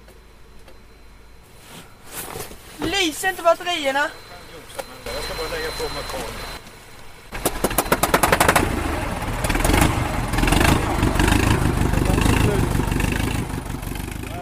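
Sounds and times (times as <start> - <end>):
speech: 3.0 - 4.2, 5.4 - 6.5
tractor engine cranking and starting then rumbling: 7.3 - 14.4.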